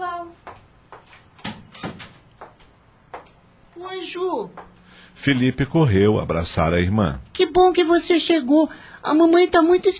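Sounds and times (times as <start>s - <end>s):
door being opened with clunks and rattling knocks: 1.4s - 2.6s
speech: 3.8s - 9.9s.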